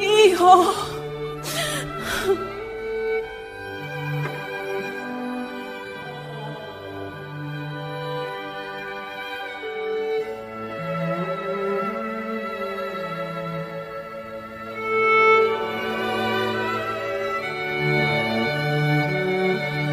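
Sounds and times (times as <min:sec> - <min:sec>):
woman crying and wailing in anguish: 0:00.0 - 0:02.7
low sustained mournful backdrop: 0:00.0 - 0:19.9.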